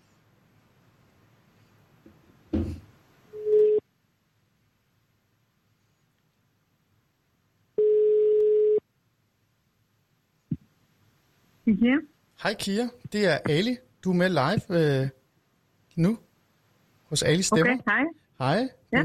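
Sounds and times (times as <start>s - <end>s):
soft thump: 2.5s - 2.9s
telephone ringing tone while calling: 3.4s - 3.8s, 7.8s - 8.8s
speech: 11.7s - 15.2s, 16.0s - 16.3s, 17.1s - 19.0s.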